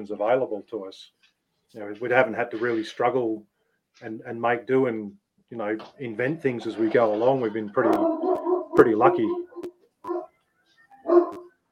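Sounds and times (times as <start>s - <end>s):
speech: 0.0s - 8.2s, 8.8s - 9.4s
dog barking: 7.8s - 10.3s, 10.9s - 11.6s.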